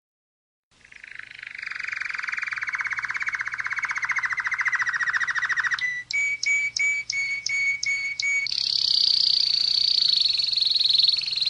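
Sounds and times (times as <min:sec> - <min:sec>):
canary singing a rolling trill: 0:00.8 - 0:11.4.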